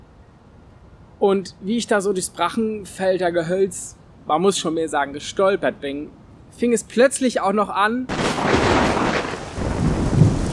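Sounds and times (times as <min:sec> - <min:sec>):
speech: 0:01.2 - 0:08.9
deep thunder rumbling in a thunderstorm: 0:08.1 - 0:10.5
heavy rain hissing in a thunderstorm: 0:08.1 - 0:10.5.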